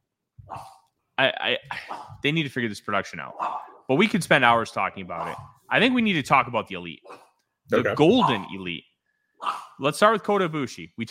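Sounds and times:
speech: 0:00.5 - 0:11.0
dog barking playfully at another dog: 0:03.4 - 0:03.8, 0:05.2 - 0:05.5.

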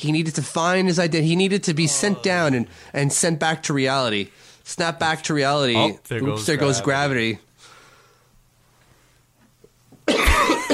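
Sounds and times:
speech: 0:00.0 - 0:07.5
single harsh loud cough with breathy rasp: 0:10.1 - 0:10.7.

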